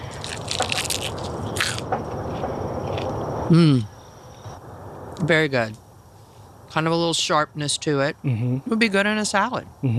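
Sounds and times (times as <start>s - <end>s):
crunching bites into a crisp freshly picked vegetable: 0.0s - 3.2s
steady hiss: 0.0s - 9.9s
speech: 3.5s - 3.9s, 5.3s - 5.8s, 6.8s - 9.9s.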